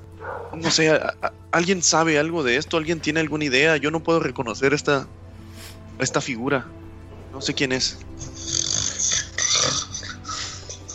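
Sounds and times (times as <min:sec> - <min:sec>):
speech: 0:00.2 - 0:05.2, 0:06.0 - 0:08.1
person imitating loud rasping snoring: 0:08.2 - 0:09.8.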